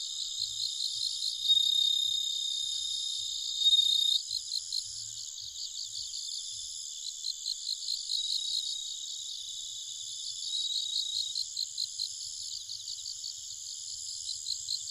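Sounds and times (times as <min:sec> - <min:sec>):
steady pulsing chorus of high-pitched night insects: 0:00.0 - 0:14.8
bell cricket ringing song at night in Nikko, Japan: 0:00.4 - 0:04.8.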